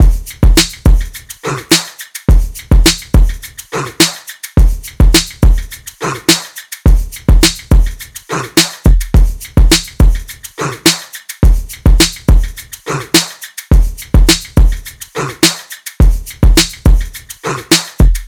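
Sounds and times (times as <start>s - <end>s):
full drum loop: 0.0s - 18.2s.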